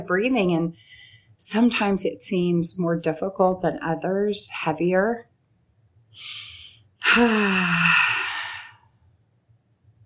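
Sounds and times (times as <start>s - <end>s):
speech: 0.0s - 5.3s, 6.2s - 8.2s
deep breath in and out: 0.8s - 1.4s, 6.2s - 8.9s
voiced sigh: 6.2s - 8.8s.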